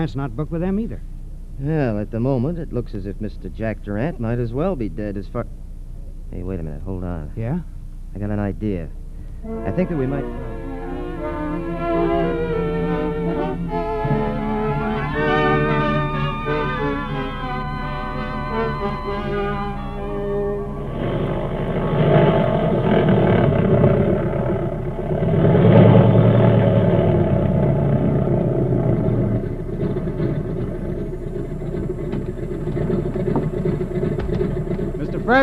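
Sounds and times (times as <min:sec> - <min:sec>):
speech: 0:00.0 - 0:05.6, 0:06.3 - 0:10.6
propeller airplane engine running: 0:03.4 - 0:35.4.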